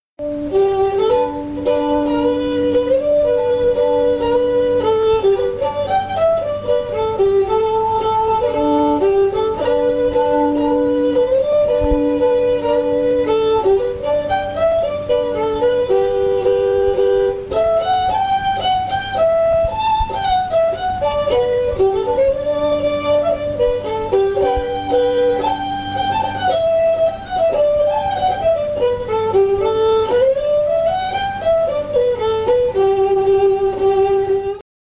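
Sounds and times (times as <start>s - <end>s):
fiddle playing a march: 0.2s - 34.6s.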